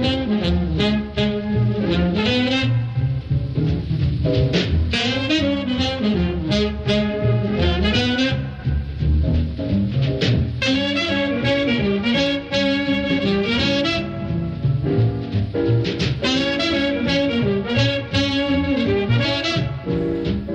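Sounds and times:
saxophone playing a lively flowing melody: 0.0 - 9.1, 10.6 - 20.5
steady musical accompaniment: 0.0 - 20.5.

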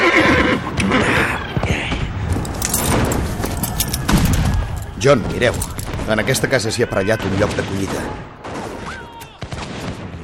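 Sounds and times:
horse neighing: 0.0 - 1.4
horse hooves clip-clopping: 2.0 - 6.7
bright metallic jingle: 2.4 - 6.5
speech: 5.0 - 8.4.

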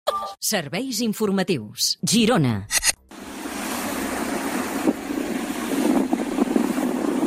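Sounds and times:
speech: 0.2 - 2.9
motorboat engines droning at sea: 3.1 - 7.2
rushing water at sea: 3.1 - 7.2
wind buffeting at sea: 3.2 - 7.2.

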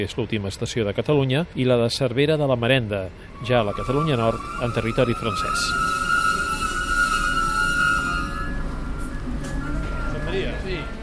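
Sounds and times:
speech: 0.0 - 6.0
moving passenger train rumble heard from inside the carriage: 1.3 - 11.0
sustained high whine: 3.3 - 11.0.

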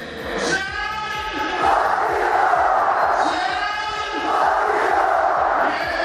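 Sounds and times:
stadium announcer's amplified voice at a football match in Gliwice Poland: 0.0 - 6.0
huge crowd of football fans roaring in unison: 1.2 - 6.0.

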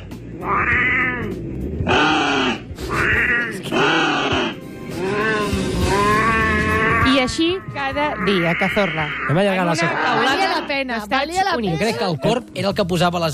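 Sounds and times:
crow calling on a rooftop: 0.3 - 10.9
speech: 0.4 - 0.9, 7.4 - 13.3
cat meowing on a rooftop: 0.4 - 1.4, 2.2 - 4.5, 5.2 - 10.7.

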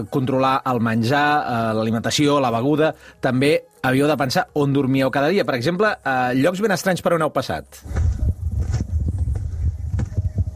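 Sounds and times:
speech: 0.0 - 8.2
hooves of a passing herd thudding on the ground: 7.8 - 10.5.

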